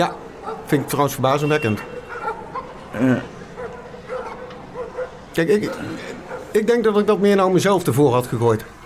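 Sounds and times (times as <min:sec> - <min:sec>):
speech: 0:00.0 - 0:01.9, 0:03.0 - 0:03.4, 0:05.4 - 0:08.8
dogs barking, one a German Shepherd: 0:00.0 - 0:06.6.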